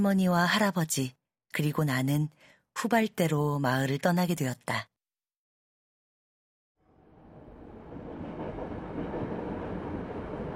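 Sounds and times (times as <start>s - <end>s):
speech: 0.0s - 4.9s
rocking train rattling along rails: 7.2s - 10.5s.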